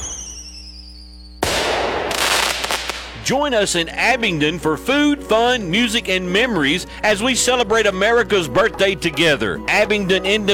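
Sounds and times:
firework whistling: 0.0 - 3.3
fireworks crackling and hissing: 0.0 - 3.8
speech: 3.3 - 10.5.

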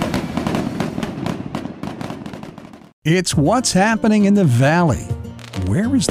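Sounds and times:
fireworks exploding in rapid crackling bursts: 0.0 - 3.0, 5.4 - 6.0
speech: 3.1 - 6.0.

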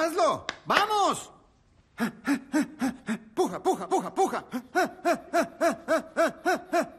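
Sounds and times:
speech: 0.1 - 1.4, 2.0 - 2.7, 3.5 - 5.5
person panting in quick shallow breaths during a childbirth breathing exercise: 2.0 - 4.9
laughter: 2.0 - 6.9.

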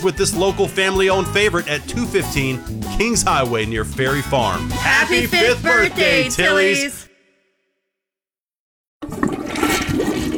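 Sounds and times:
speech: 0.0 - 7.0
toilet flushing with swirling water and gurgling: 9.0 - 10.3.

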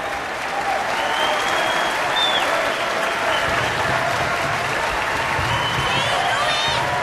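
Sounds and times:
large audience applauding in a standing ovation: 0.0 - 7.0
faint whistles from an audience: 0.9 - 3.8, 5.3 - 6.6.

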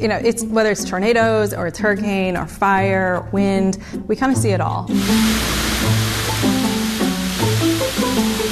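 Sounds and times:
speech: 0.0 - 6.0
water spray sheeting across window test unit in air-water-structural test: 4.9 - 8.5.

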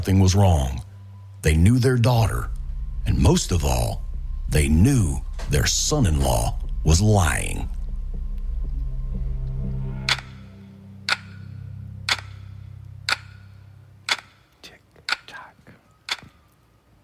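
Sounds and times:
speech: 0.0 - 0.8, 1.4 - 7.8
low rumbling drone: 0.0 - 14.1
clock ticking: 2.0 - 11.4, 12.0 - 14.5, 15.1 - 16.4.

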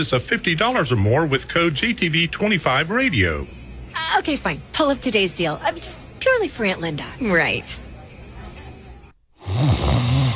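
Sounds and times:
speech: 0.0 - 7.8
person snoring: 9.4 - 10.3.

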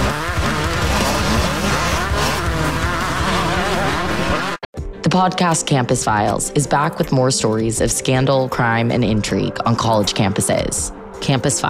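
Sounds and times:
speedway motorcycles racing around a track: 0.0 - 4.7
speech: 5.2 - 11.6.

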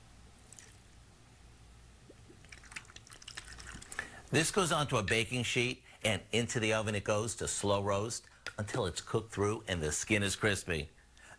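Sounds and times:
chicken broth and white wine poured into a pan over a chicken: 2.4 - 4.2
speech: 4.3 - 11.0.

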